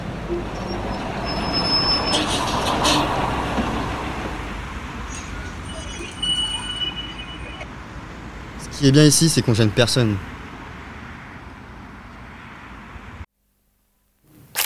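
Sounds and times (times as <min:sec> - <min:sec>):
high-pitched bus brake squeals: 0:00.0 - 0:07.7
heavy bus engine rumbling: 0:00.0 - 0:10.3
speech: 0:08.8 - 0:10.3.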